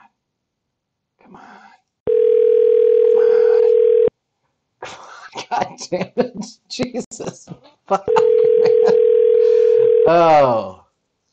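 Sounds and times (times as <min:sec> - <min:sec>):
faint noise: 0:00.0 - 0:11.3
ringback tone of an outgoing phone call: 0:02.1 - 0:04.1, 0:08.1 - 0:10.2
laughter: 0:05.4 - 0:09.1
speech: 0:05.8 - 0:09.0, 0:10.1 - 0:10.8.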